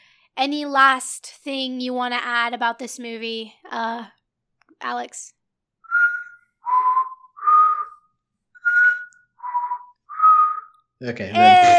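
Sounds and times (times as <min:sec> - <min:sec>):
speech: 0:00.4 - 0:04.2, 0:04.8 - 0:05.4, 0:11.0 - 0:11.7
person whistling a short tune: 0:05.9 - 0:08.0, 0:08.6 - 0:10.8.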